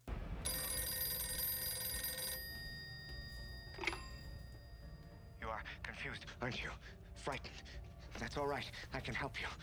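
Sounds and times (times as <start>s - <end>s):
telephone bell ringing: 0.5s - 5.4s
speech: 5.5s - 9.6s.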